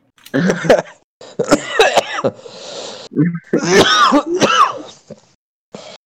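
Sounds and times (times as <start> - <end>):
person coughing and clearing throat: 0.3 - 2.4, 3.5 - 5.2.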